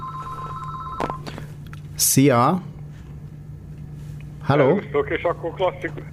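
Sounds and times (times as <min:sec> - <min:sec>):
telephone ringing for incoming call: 0:00.0 - 0:01.3
speech: 0:02.0 - 0:02.7, 0:04.5 - 0:06.1.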